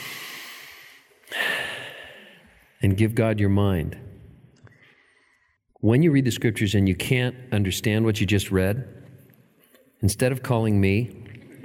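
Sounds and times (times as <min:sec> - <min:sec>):
deep breath: 0:00.0 - 0:02.8, 0:04.6 - 0:05.6
speech: 0:02.8 - 0:04.1, 0:05.8 - 0:09.0, 0:10.0 - 0:11.3.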